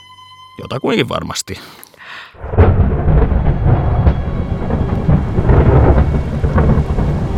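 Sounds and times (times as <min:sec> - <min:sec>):
speech: 0:00.6 - 0:02.6
heavy thunder rumbling: 0:02.4 - 0:07.3
steady downpour of rain hissing: 0:02.4 - 0:07.3.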